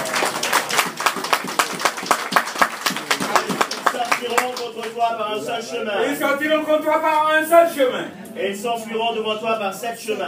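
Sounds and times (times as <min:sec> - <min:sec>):
crowd clapping and applauding: 0:00.0 - 0:05.0
speech: 0:05.0 - 0:10.2.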